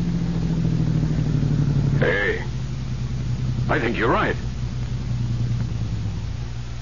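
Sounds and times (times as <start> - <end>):
car engine humming as the vehicle slows on a road: 0.0 - 6.8
speech: 3.7 - 4.5.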